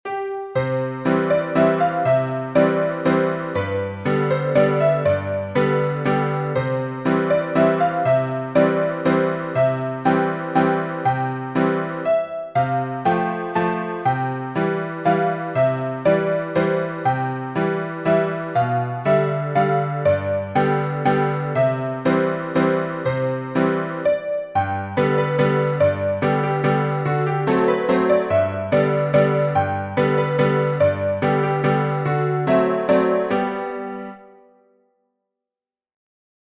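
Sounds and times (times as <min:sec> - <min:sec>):
piano dance music: 0:00.0 - 0:34.8.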